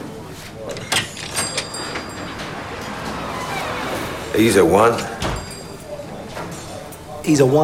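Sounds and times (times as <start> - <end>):
murmur of voices: 0.0 - 7.6
cafe glass door opening and closing: 0.7 - 5.8
speech: 4.4 - 5.2, 7.2 - 7.6.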